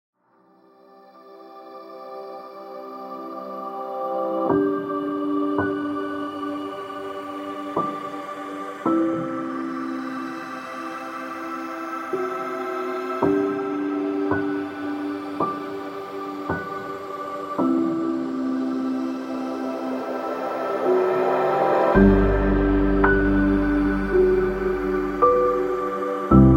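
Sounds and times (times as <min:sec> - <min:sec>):
ambient piano music: 0:00.4 - 0:26.5.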